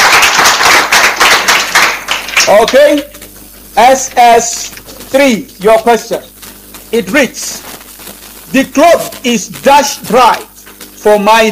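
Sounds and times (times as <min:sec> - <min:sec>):
audience applause at a quiz competition, clapping together in rhythm: 0:00.0 - 0:03.2
speech: 0:02.5 - 0:03.1, 0:03.8 - 0:06.3, 0:06.9 - 0:07.8, 0:08.5 - 0:11.5.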